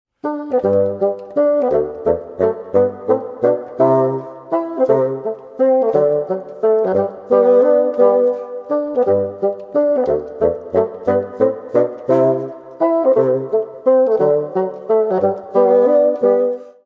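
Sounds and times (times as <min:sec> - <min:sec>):
bassoon duet playing a minuet: 0:00.2 - 0:16.8.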